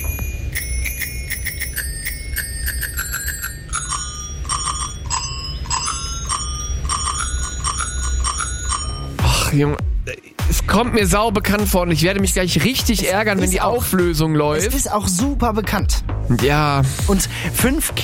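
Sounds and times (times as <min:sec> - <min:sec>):
bicycle bell playing a song melody: 0:00.0 - 0:09.2
speech: 0:09.6 - 0:18.0.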